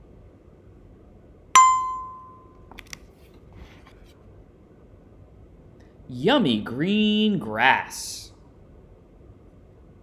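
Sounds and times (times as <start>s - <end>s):
bright page-turn chime of a children's book being read aloud: 1.6s - 2.4s
speech: 6.1s - 8.2s.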